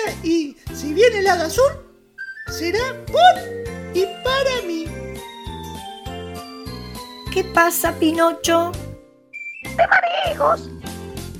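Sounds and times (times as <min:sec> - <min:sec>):
speech: 0:00.1 - 0:01.8, 0:02.5 - 0:04.9, 0:07.4 - 0:08.9, 0:09.8 - 0:10.8
person whistling a high steady note: 0:02.2 - 0:02.6, 0:09.3 - 0:09.8.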